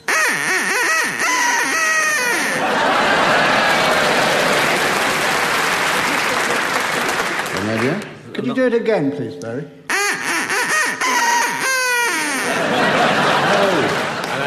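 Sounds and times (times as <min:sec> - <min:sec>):
duck quacking: 0:00.0 - 0:02.7, 0:09.9 - 0:12.8
audience laughing: 0:01.2 - 0:07.9, 0:10.8 - 0:14.4
audience applause: 0:02.4 - 0:08.2, 0:12.6 - 0:14.4
speech: 0:08.4 - 0:09.8.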